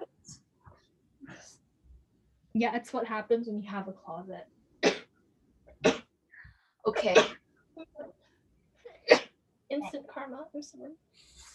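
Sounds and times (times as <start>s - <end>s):
speech: 2.6s - 4.6s, 6.9s - 7.4s, 9.7s - 11.5s
loud sharp sneeze: 7.0s - 7.4s.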